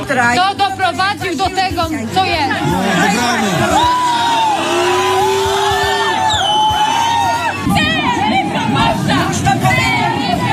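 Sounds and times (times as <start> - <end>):
speech: 0.1 - 4.3
individual raised voices: 2.3 - 10.5
large protesting crowd shouting outside a church: 2.4 - 10.5.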